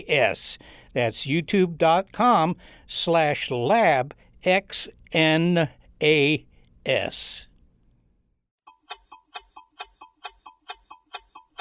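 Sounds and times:
speech: 0:00.0 - 0:07.5
clock ticking: 0:08.7 - 0:11.6.

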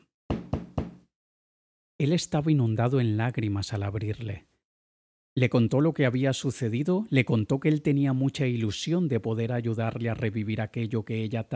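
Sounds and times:
knocking on a door: 0:00.3 - 0:01.1
speech: 0:02.0 - 0:04.5, 0:05.4 - 0:11.5.

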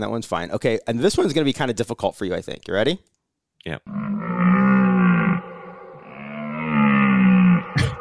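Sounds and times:
speech: 0:00.0 - 0:04.2
deer buck bellowing in a canyon: 0:03.9 - 0:07.9.

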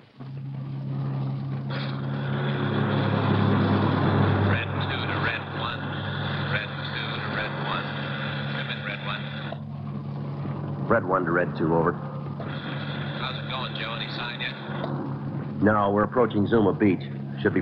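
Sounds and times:
broad highway road noise: 0:00.0 - 0:17.6
car engine droning on a highway: 0:00.0 - 0:17.6
faint indistinct voices: 0:04.5 - 0:17.6
speech: 0:11.0 - 0:12.1, 0:15.6 - 0:17.6.

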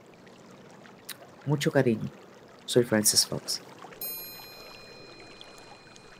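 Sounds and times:
flowing water played as sensory therapy: 0:00.0 - 0:06.1
speech: 0:01.4 - 0:03.7
bright high chime: 0:04.0 - 0:06.1.

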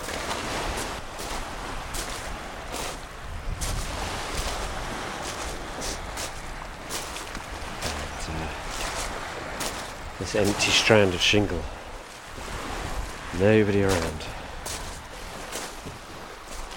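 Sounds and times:
sea water lapping against seaweed-strewn rocks: 0:00.0 - 0:16.7
speech: 0:10.2 - 0:11.8, 0:13.4 - 0:14.4.

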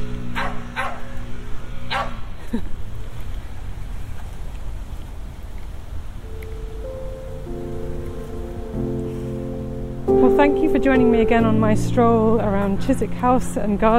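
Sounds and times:
low droning hum: 0:00.0 - 0:04.4, 0:06.2 - 0:13.9
outdoor noise: 0:00.0 - 0:13.9
dog barking while playing with frisbee: 0:00.4 - 0:01.1, 0:01.9 - 0:02.2
speech: 0:10.7 - 0:13.9.

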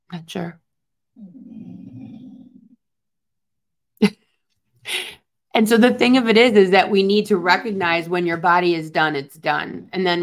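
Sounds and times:
speech: 0:00.1 - 0:00.6, 0:01.2 - 0:01.7, 0:05.6 - 0:10.2
dog making a low rumbling groan-like noise: 0:01.2 - 0:02.8.

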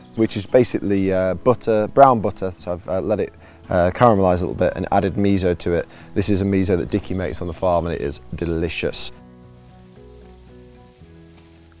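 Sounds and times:
meat sizzling in a hot pan over high heat: 0:00.0 - 0:01.4, 0:05.1 - 0:11.7
speech: 0:00.2 - 0:09.2.

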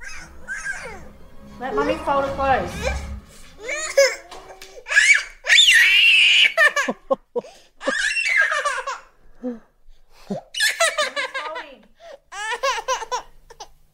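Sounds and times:
toddler having a tantrum while clothes are being folded: 0:00.0 - 0:01.1, 0:02.7 - 0:07.0, 0:07.8 - 0:09.1, 0:12.3 - 0:13.7
speech: 0:01.6 - 0:03.1.

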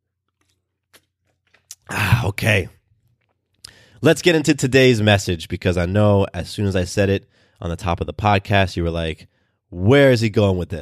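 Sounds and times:
person sipping water: 0:00.2 - 0:02.4
speech: 0:02.2 - 0:02.8, 0:04.0 - 0:10.8.

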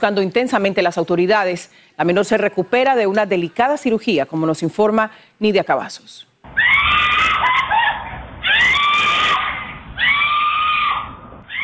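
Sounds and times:
speech: 0:00.0 - 0:07.1
woman screaming desperately: 0:06.5 - 0:11.6.

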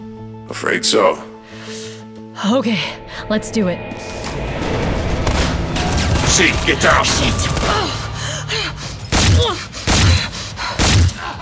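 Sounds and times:
busy steady video game soundscape: 0:00.0 - 0:11.3
speech: 0:00.5 - 0:01.3, 0:02.4 - 0:04.2, 0:06.3 - 0:07.8.

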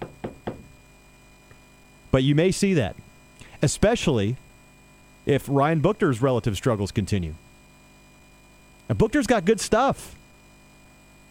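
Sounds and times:
knuckle raps on a wooden surface: 0:00.0 - 0:00.7
faint hum: 0:00.0 - 0:11.2
speech: 0:02.1 - 0:03.0, 0:03.6 - 0:04.4, 0:05.2 - 0:07.4, 0:08.9 - 0:10.2.

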